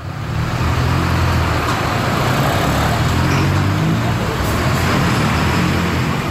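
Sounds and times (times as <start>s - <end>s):
cars and buses rolling past in street traffic in front of a train station: 0.0s - 6.3s
faint murmur of voices: 2.8s - 4.8s.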